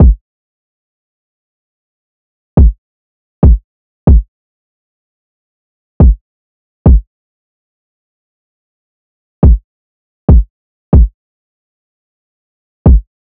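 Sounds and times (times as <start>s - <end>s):
kick drum loop at 140 BPM: 0.0s - 0.2s, 3.4s - 4.2s, 6.0s - 6.2s, 9.4s - 9.6s, 10.3s - 11.1s, 12.9s - 13.1s.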